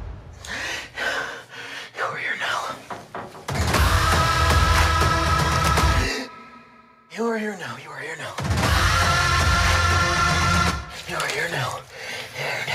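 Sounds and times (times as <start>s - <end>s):
heavy stressed breathing: 0.4s - 3.2s, 3.8s - 7.1s, 8.8s - 12.7s.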